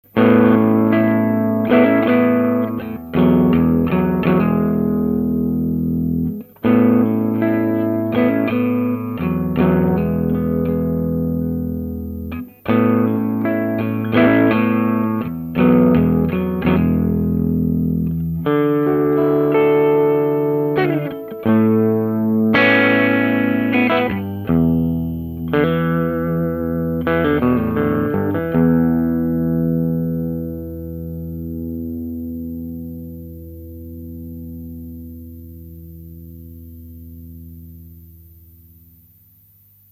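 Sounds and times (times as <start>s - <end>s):
Tele guitar through triode filter: 0.0s - 39.9s.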